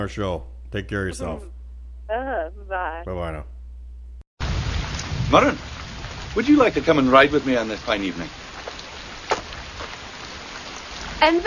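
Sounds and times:
speech: 0.0 - 3.5, 5.3 - 5.7, 6.3 - 8.4, 11.2 - 11.4
sharp splash: 4.4 - 11.2
steady rain: 4.4 - 11.4.

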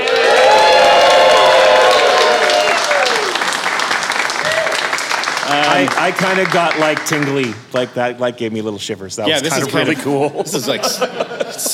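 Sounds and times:
live crowd whooping: 0.0 - 5.9
live crowd clapping: 0.0 - 8.1
speech: 5.8 - 11.7
laughter: 9.4 - 11.7.

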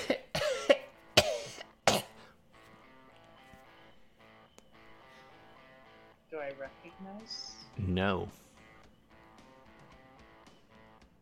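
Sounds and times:
harsh raspy coughing: 0.0 - 2.4
speech: 6.6 - 8.4.

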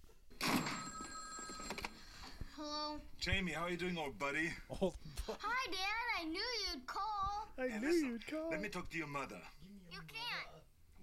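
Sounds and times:
telephone bell ringing: 0.4 - 2.3
speech: 2.6 - 9.6.

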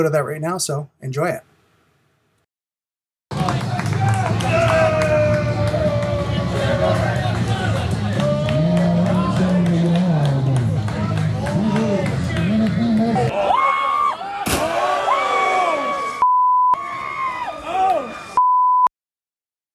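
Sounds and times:
speech: 0.0 - 1.5
crowd chattering and cheering at an outdoor backyard wrestling event: 3.3 - 16.2, 16.8 - 18.4
short electronic beeps: 18.4 - 18.9.

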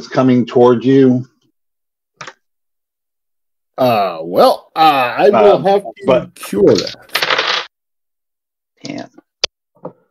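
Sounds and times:
speech: 0.0 - 1.3, 3.8 - 7.2, 8.8 - 9.2
dice clattering across a tabletop: 6.8 - 7.7.

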